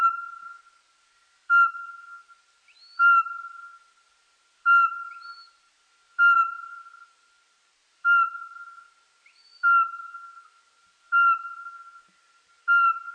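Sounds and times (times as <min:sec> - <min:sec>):
Eurasian pygmy owl whistling: 0:00.0 - 0:00.6, 0:01.5 - 0:03.8, 0:04.7 - 0:05.6, 0:06.2 - 0:07.0, 0:08.0 - 0:10.5, 0:11.1 - 0:12.1, 0:12.7 - 0:13.1.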